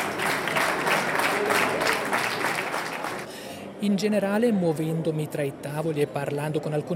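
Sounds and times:
crowd applauding returning rescuers: 0.0s - 3.3s
speech: 3.8s - 6.9s.

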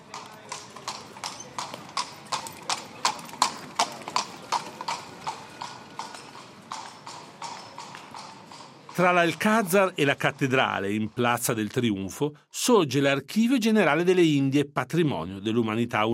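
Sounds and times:
hooves of horses pulling tourist carriages on pavement in Seville Spain: 0.0s - 11.2s
faint murmur of street noise in Seville: 0.0s - 16.1s
speech: 9.0s - 16.1s.

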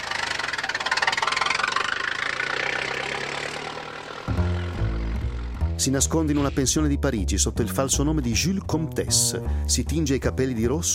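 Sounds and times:
car engine running as car drives away toward Paris: 0.0s - 6.8s
sustained tonal sound: 0.0s - 6.8s
speech: 5.8s - 10.9s.

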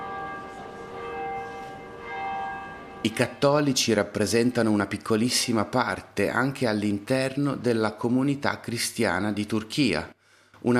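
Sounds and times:
church bells ringing in a peal: 0.0s - 5.9s
speech: 3.0s - 10.7s.

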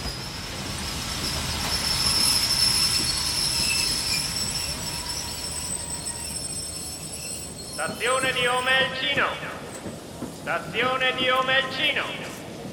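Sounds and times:
train wheels squealing: 0.0s - 8.7s
train wagons and wheels rumbling along a railway: 0.0s - 12.7s
speech: 7.8s - 9.6s, 10.5s - 12.3s.

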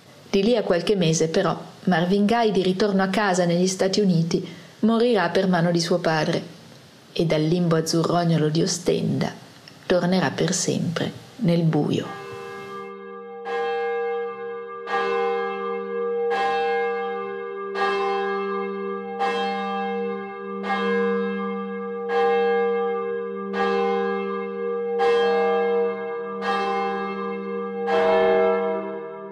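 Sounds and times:
speech: 0.4s - 12.2s
church bell striking six o'clock: 12.0s - 29.3s.

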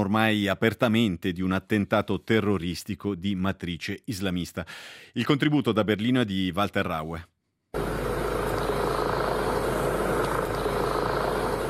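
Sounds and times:
speech: 0.0s - 7.8s
helicopter rotors and engines droning over a city: 7.8s - 11.6s.

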